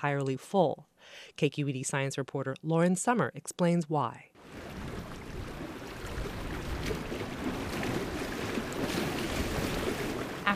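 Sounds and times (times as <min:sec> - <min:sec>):
speech: 0:00.0 - 0:04.8
water lapping against the shore of a reservoir near Sacramento: 0:04.4 - 0:10.5.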